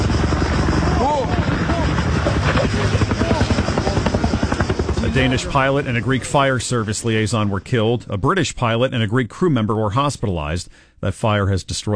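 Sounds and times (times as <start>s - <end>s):
helicopter rotor chop overhead: 0.0s - 8.7s
speech: 5.2s - 11.9s.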